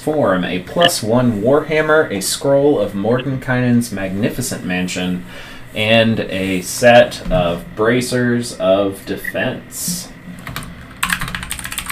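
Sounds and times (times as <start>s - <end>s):
speech: 0.0s - 10.1s
typing on a computer keyboard: 10.4s - 11.9s.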